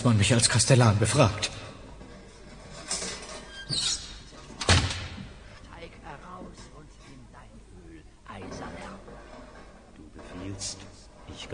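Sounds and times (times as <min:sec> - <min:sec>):
speech: 0:00.0 - 0:01.6
soft creaks: 0:01.4 - 0:04.6, 0:08.3 - 0:11.5
door slamming shut: 0:04.6 - 0:05.3.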